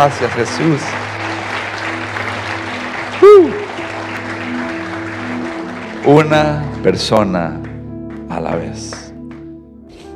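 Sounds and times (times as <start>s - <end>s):
speech: 0.0s - 1.1s, 3.2s - 3.6s, 6.0s - 7.6s, 8.4s - 9.0s
audience clapping steadily: 0.0s - 9.5s
person letting out a loud rising-and-falling whoop: 3.2s - 3.8s.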